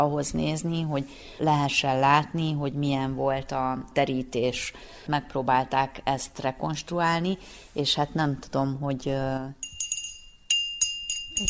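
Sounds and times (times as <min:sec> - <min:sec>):
speech: 0:00.0 - 0:09.7
crystal glass bell ringing on a table: 0:09.6 - 0:11.4.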